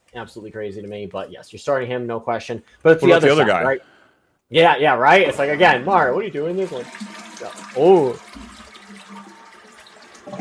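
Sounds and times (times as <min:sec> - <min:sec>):
speech: 0:00.1 - 0:03.9, 0:04.5 - 0:08.4
toilet flushing: 0:05.1 - 0:10.4.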